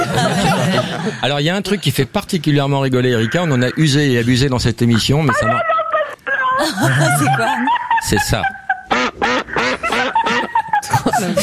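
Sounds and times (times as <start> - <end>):
laughter: 0.0 - 1.9, 5.2 - 11.4
speech: 0.8 - 5.8, 6.6 - 8.6, 11.2 - 11.4
duck quacking with nasal raspy calls: 3.0 - 4.0, 8.0 - 10.6.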